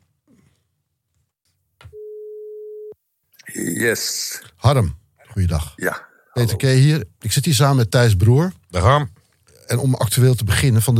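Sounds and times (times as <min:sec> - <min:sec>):
telephone tone while placing a phone call: 0:01.9 - 0:03.0
speech: 0:03.5 - 0:10.9.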